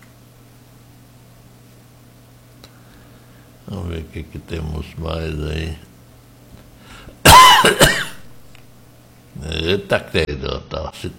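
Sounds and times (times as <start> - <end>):
speech: 3.7 - 5.9, 9.7 - 11.1
loud raspy cough: 7.2 - 8.3.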